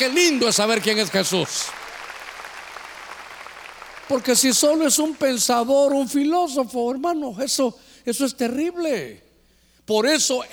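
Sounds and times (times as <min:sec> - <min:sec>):
speech: 0:00.0 - 0:01.8, 0:04.1 - 0:09.2, 0:09.9 - 0:10.5
audience applauding for the Lord: 0:00.0 - 0:05.5.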